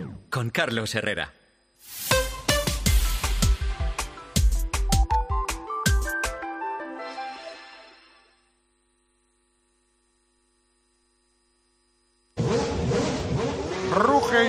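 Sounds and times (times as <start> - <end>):
speech: 0.3 - 2.0
musical jingle with punchy hits: 1.9 - 8.1
Formula 1 race car engine revving: 12.4 - 14.4.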